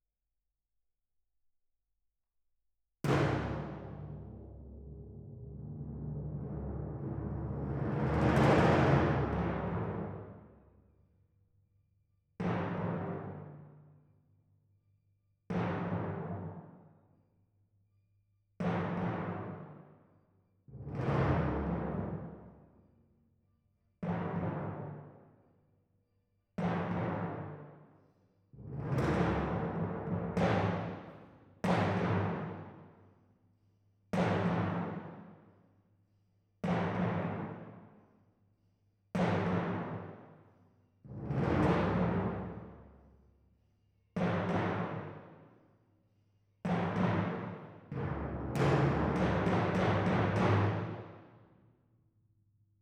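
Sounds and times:
timpani: 0:03.0 - 0:10.6, 0:12.4 - 0:13.8, 0:15.5 - 0:16.9, 0:18.6 - 0:19.9, 0:20.7 - 0:22.7, 0:24.0 - 0:25.2, 0:26.6 - 0:27.8, 0:28.6 - 0:32.9, 0:34.2 - 0:35.3, 0:36.6 - 0:37.9, 0:39.2 - 0:40.4, 0:41.1 - 0:43.0, 0:44.2 - 0:45.5, 0:46.7 - 0:51.4.

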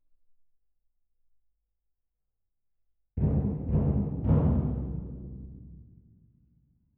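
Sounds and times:
percussion: 0:03.2 - 0:06.1.

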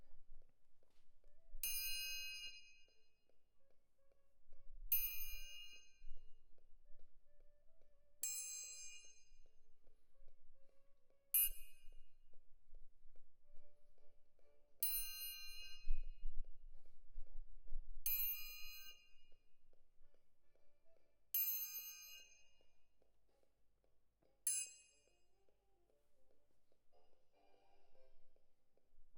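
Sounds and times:
percussion: 0:00.0 - 0:03.9, 0:04.6 - 0:10.1, 0:11.3 - 0:12.6, 0:14.8 - 0:16.3, 0:18.0 - 0:23.6, 0:24.2 - 0:29.1.

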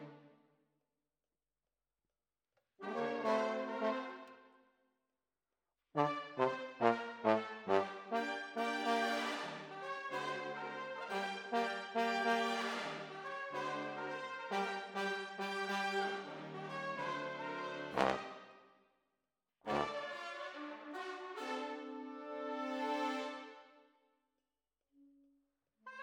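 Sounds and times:
trombone: 0:02.8 - 0:04.3, 0:06.0 - 0:18.5, 0:19.7 - 0:23.6.

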